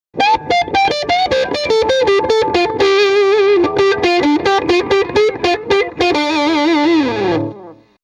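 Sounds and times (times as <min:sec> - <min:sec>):
electric guitar bridge pickup through valve amplifier: 0:00.2 - 0:08.0.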